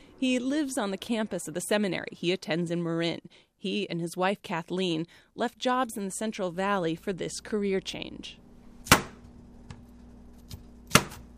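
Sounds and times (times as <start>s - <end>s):
speech: 0.2s - 9.0s
knife chopping green cauliflower at home: 10.4s - 11.3s.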